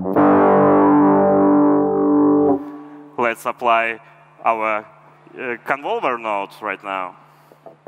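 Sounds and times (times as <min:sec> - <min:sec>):
sustained held synth chord: 0:00.1 - 0:03.2
speech: 0:03.3 - 0:07.3.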